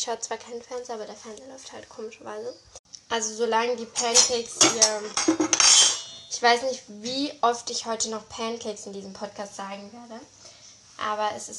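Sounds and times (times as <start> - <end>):
speech: 0.0 - 10.4, 11.0 - 11.5
ringing metallic clatter: 4.0 - 6.3
dishes and cutlery clinking while tidying a kitchen: 4.0 - 6.4.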